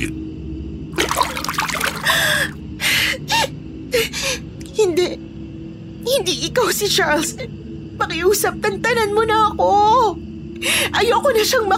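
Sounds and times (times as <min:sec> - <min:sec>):
faint steady hum: 0:00.0 - 0:11.7
water trickling and splashing into a basin: 0:01.0 - 0:02.2
speech: 0:06.4 - 0:11.7.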